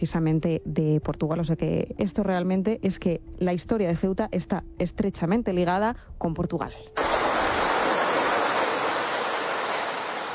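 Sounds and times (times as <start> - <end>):
speech: 0.0 - 7.1
sea waves: 7.0 - 10.3.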